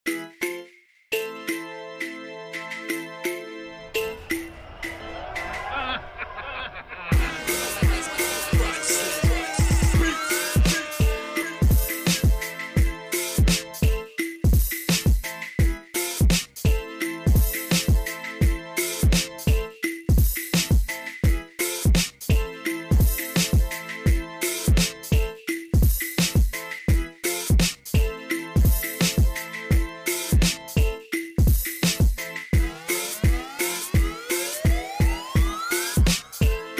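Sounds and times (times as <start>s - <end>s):
instrumental beat from Haiti: 0.1s - 5.7s, 7.1s - 36.7s
laughter: 4.2s - 9.5s.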